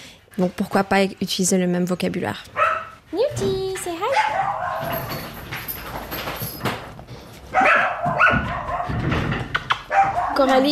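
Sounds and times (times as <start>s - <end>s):
speech: 0.4s - 3.6s, 10.4s - 10.6s
dogs barking: 2.5s - 3.0s, 4.0s - 5.4s, 7.5s - 10.6s.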